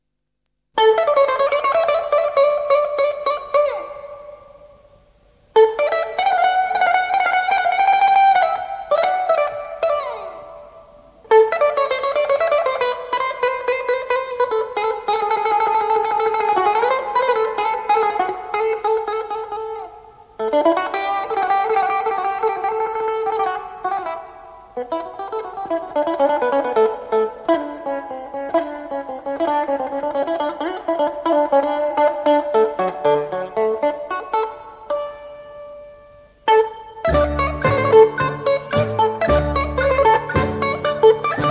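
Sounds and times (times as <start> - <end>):
bouzouki in Greece: 0.8 - 41.4.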